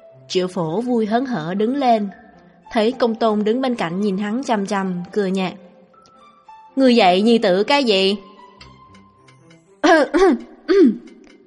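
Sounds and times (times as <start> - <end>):
speech: 0.3 - 5.6, 6.8 - 8.3, 10.0 - 11.1
dry throat clearing: 10.2 - 11.1.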